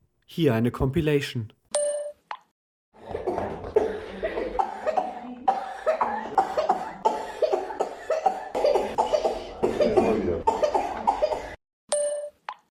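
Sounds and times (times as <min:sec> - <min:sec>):
speech: 0:00.3 - 0:01.6
children coughing loudly: 0:03.0 - 0:11.6.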